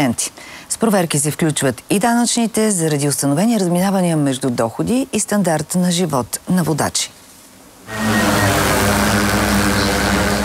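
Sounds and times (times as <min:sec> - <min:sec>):
speech: 0:00.0 - 0:07.2
police drone propellers buzzing during operation against traffic offenders in Burgas region, Bulgaria: 0:07.9 - 0:10.4.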